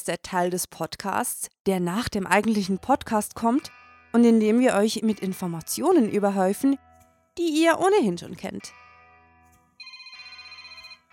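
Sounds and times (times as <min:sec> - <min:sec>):
speech: 0:00.0 - 0:08.8
electronic telephone ringtone: 0:09.8 - 0:11.1.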